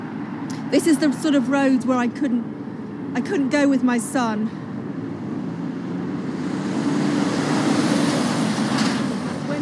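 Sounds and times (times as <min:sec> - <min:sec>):
speech: 0:00.7 - 0:04.6
large lorry rumbling past on a busy main road: 0:04.6 - 0:09.5.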